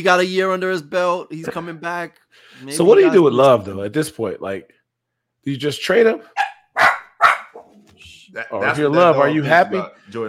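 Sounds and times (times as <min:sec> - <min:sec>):
speech: 0:00.0 - 0:04.8, 0:05.4 - 0:06.4, 0:08.3 - 0:10.2
dog barking excitedly: 0:06.4 - 0:07.8.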